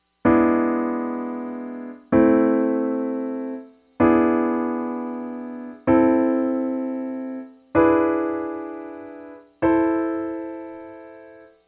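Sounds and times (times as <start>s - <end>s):
keyboard minor dominant seventh chord resolution: 0.2s - 11.6s.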